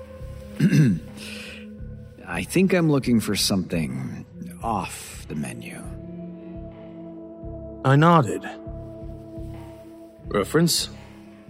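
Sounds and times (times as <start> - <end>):
man clearing his throat at a bar: 0.6 - 1.2
speech: 2.4 - 6.0, 7.8 - 8.6, 10.3 - 11.0.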